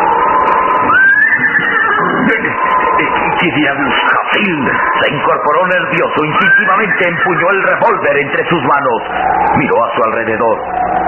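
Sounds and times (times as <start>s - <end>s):
nervous horses whinnying at night: 0.6s - 5.0s, 5.7s - 8.3s
speech: 3.4s - 11.0s.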